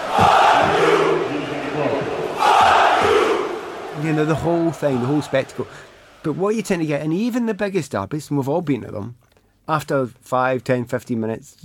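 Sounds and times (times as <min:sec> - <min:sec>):
football fans singing and chanting in a stadium before the game: 0:00.0 - 0:06.2
speech: 0:04.1 - 0:11.6.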